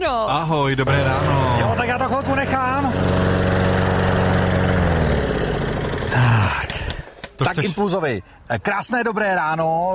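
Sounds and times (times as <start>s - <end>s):
speech: 0.0s - 3.1s, 7.5s - 9.9s
lawn mower engine droning while mowing grass: 0.6s - 7.2s.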